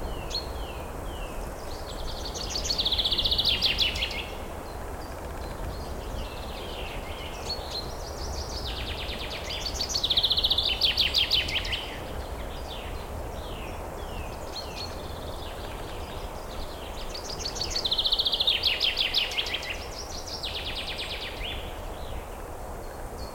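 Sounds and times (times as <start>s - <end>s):
wind in a night forest: 0.0s - 23.3s.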